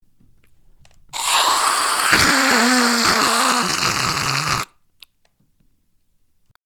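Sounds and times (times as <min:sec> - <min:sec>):
monster or creature hissing: 0:01.2 - 0:04.7.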